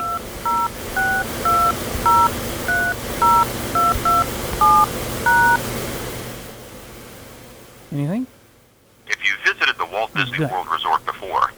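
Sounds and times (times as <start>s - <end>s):
telephone keypad touch-tones entering a number into an automated resort phone line: 0.0s - 5.6s
faint hum: 0.0s - 11.5s.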